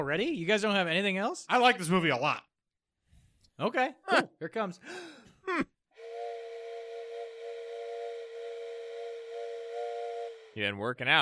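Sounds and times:
speech: 0.0 - 2.5, 3.6 - 5.8, 10.6 - 11.1
long steady whistle blown by a person: 6.0 - 10.6.

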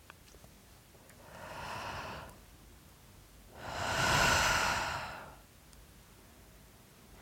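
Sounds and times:
deep inhale swelling the belly: 1.2 - 2.4, 3.5 - 5.4
long slow mouth exhale as a breathing exercise: 1.2 - 2.4, 3.6 - 5.4.

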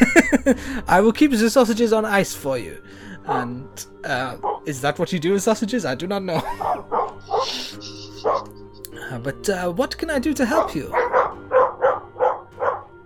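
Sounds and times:
laughter: 0.0 - 0.6, 6.3 - 8.9
speech: 0.0 - 8.5, 9.1 - 11.2
several dogs barking loudly: 3.2 - 3.5, 4.4 - 4.7, 6.6 - 8.6, 10.9 - 12.9.

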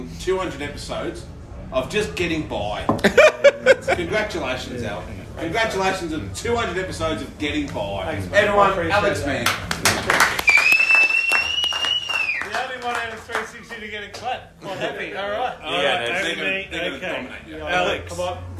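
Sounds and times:
speech: 0.2 - 9.7, 13.8 - 18.5
laughter: 3.0 - 4.6, 14.6 - 15.5
clapping: 9.4 - 14.4
high whistle: 10.5 - 12.6.

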